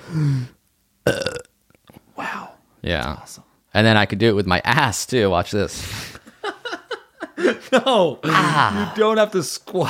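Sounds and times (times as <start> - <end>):
speech: 0.1 - 1.4, 2.8 - 6.1, 7.4 - 9.8
deliberate burp after swallowing air: 1.0 - 1.5.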